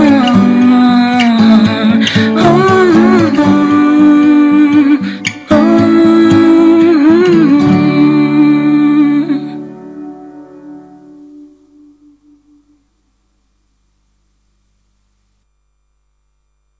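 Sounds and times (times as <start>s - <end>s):
recorded song with sung melody over instrumental backing: 0.0s - 12.8s.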